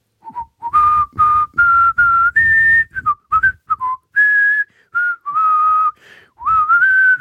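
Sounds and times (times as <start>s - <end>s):
person whistling a melody: 0.2s - 7.2s.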